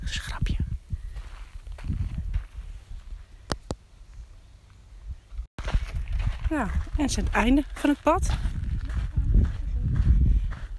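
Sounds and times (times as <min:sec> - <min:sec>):
footsteps of people crunching along an outdoor path: 0:01.0 - 0:03.3, 0:05.6 - 0:10.7
speech: 0:06.5 - 0:08.6.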